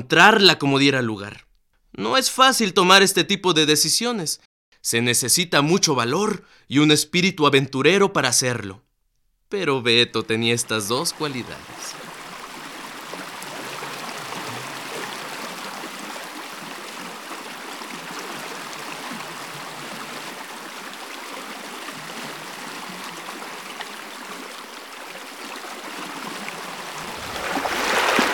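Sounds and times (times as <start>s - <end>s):
speech: 0.0s - 1.4s, 2.0s - 8.9s, 9.5s - 12.0s
splash of water thrown at a person by the river: 11.1s - 28.3s
river flowing over rocks: 11.6s - 28.3s.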